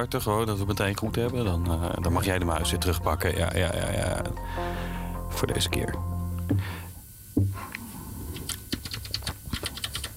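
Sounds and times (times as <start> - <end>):
speech: 0.0 - 6.8
dull thumps: 7.4 - 7.6
typing on a computer keyboard: 8.7 - 10.1.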